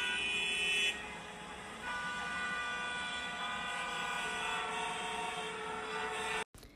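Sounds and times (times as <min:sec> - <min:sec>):
car horns honking in busy street traffic: 0:00.0 - 0:06.5
rumble of engines in busy street traffic: 0:00.0 - 0:06.7.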